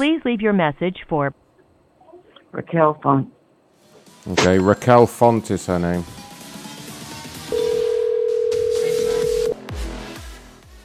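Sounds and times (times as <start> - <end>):
speech: 0.0 - 1.4, 2.5 - 3.4, 4.2 - 6.2
telephone ringing tone on a call: 7.5 - 9.6.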